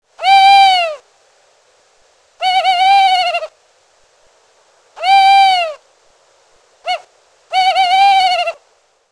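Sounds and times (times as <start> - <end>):
tawny owl calling: 0.2 - 1.0, 2.4 - 3.6, 5.0 - 5.8, 6.8 - 8.6.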